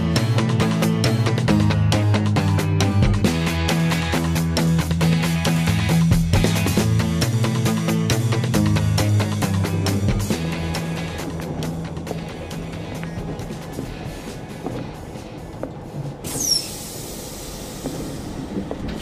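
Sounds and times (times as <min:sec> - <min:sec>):
train rolling along rails: 0:00.2 - 0:19.0
train wheels clacking: 0:10.2 - 0:19.0
high metallic squeal: 0:16.3 - 0:16.8.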